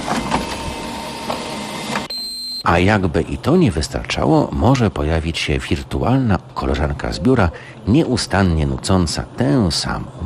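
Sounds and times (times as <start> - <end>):
printer or copier whirring from an office ambience sound generator: 0.0 - 2.1
speech: 2.6 - 10.2.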